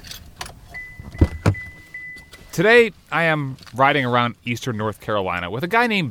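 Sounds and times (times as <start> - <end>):
brand-new pickup truck doors shutting with heavy thuds: 0.0 - 2.8
clicks and rustles of occupants climbing out of a pickup truck: 0.0 - 4.3
brand-new pickup truck door-ajar chime: 0.8 - 2.6
speech: 2.6 - 6.1.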